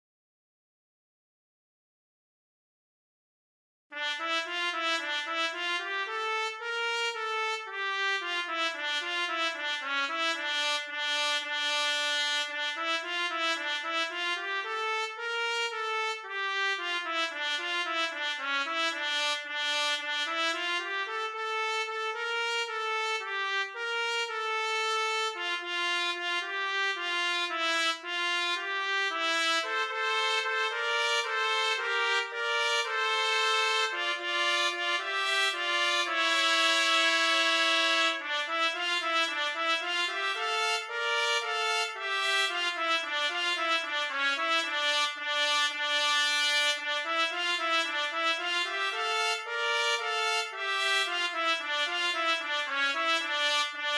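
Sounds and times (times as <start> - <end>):
trumpet playing a czardas: 3.9 - 53.9.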